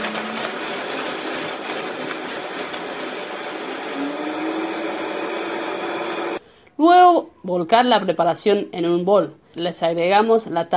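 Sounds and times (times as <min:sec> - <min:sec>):
blender blending corn kernels with milk: 0:00.0 - 0:06.4
speech: 0:06.8 - 0:10.7.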